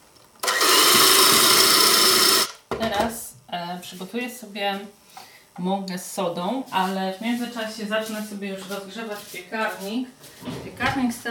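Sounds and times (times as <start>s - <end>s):
electric mixer beating cake batter: 0.4s - 2.6s
speech: 3.0s - 5.0s, 5.6s - 11.2s.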